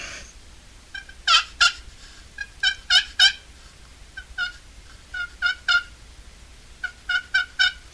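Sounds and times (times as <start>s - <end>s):
soft raspy turkey tree yelps on a handheld turkey call: 0.9s - 3.5s, 4.1s - 6.0s, 6.8s - 7.9s.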